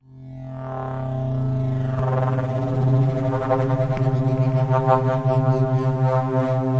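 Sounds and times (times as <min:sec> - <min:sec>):
approaching spindown synth: 0:00.8 - 0:06.7.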